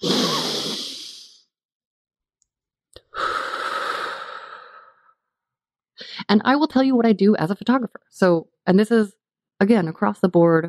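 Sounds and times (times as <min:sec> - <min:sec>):
long deep human breath in and out: 0:00.0 - 0:01.5, 0:03.0 - 0:05.2
speech: 0:06.3 - 0:10.6.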